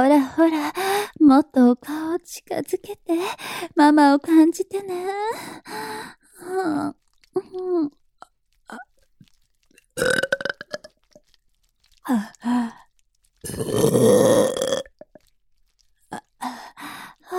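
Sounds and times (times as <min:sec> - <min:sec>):
speech: 0:00.0 - 0:08.0, 0:08.7 - 0:08.9, 0:10.0 - 0:10.3, 0:12.0 - 0:12.8, 0:13.4 - 0:14.9
person burping: 0:10.0 - 0:10.9, 0:13.4 - 0:15.2.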